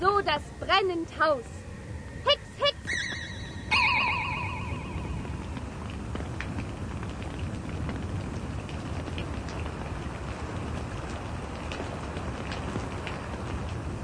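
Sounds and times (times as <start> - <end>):
speech: 0.0 - 1.6
shimmering warbling magical sound effect: 2.9 - 5.4
heavy rain pouring: 2.9 - 14.0.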